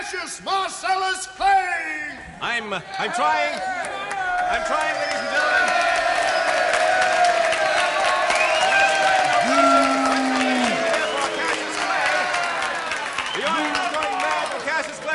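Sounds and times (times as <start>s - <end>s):
speech: 0.1s - 5.9s
large crowd cheering: 2.9s - 15.1s
loud overlapping shouts and whoops: 3.4s - 13.7s
steady roar of applause: 3.5s - 15.1s.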